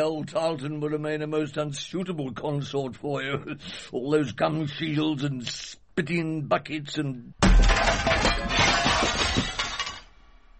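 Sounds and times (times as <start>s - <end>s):
speech: 0.0s - 9.6s
glass shattering: 7.4s - 10.4s.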